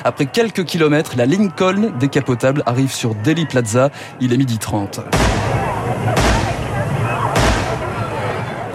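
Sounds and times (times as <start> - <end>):
speech: 0.0 - 6.5
loud gunshots echoing: 5.1 - 8.5
constant dense roar: 5.1 - 8.7.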